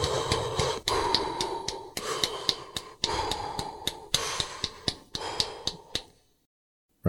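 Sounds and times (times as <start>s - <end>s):
short sharp regular taps of running steps: 0.0s - 6.3s
rhythmic breathing paced to running steps: 0.0s - 6.4s.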